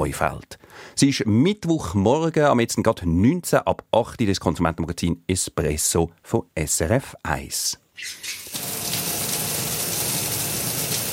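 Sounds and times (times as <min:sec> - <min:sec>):
speech: 0:00.0 - 0:08.6
shower water spraying: 0:08.0 - 0:11.1.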